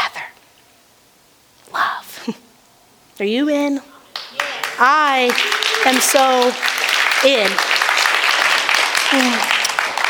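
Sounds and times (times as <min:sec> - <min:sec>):
speech: 0:03.2 - 0:03.9, 0:04.8 - 0:07.7, 0:09.1 - 0:09.5
audience clapping during a worship service: 0:04.1 - 0:10.0.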